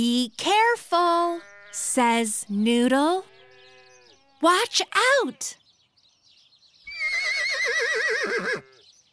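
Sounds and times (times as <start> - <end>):
speech: 0.0 - 3.3, 4.4 - 5.6
horse on a farm whinnying: 6.9 - 8.8.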